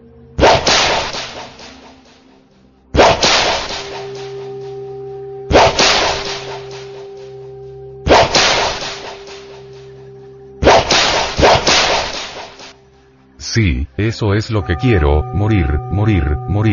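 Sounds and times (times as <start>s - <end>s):
whip cracks inside a temple: 0.4s - 2.2s, 3.0s - 4.5s, 5.5s - 7.3s, 8.1s - 9.8s, 10.6s - 12.8s
low sustained hum: 3.5s - 13.4s, 14.4s - 16.7s
speech: 13.5s - 16.7s.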